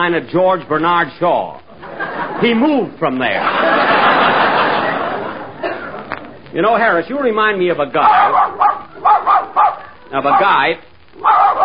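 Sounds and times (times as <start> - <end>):
speech: 0.0 - 1.6, 2.4 - 4.0, 6.5 - 8.6, 10.1 - 10.9
laughter: 1.7 - 6.4
dog barking and yapping: 8.0 - 11.6.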